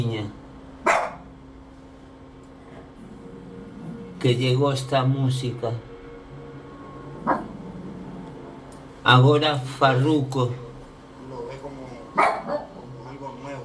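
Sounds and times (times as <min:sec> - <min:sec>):
steady low hum: 0:00.0 - 0:13.6
female dog barking: 0:00.8 - 0:01.3, 0:12.2 - 0:12.8
speech: 0:04.2 - 0:05.9, 0:09.1 - 0:10.7.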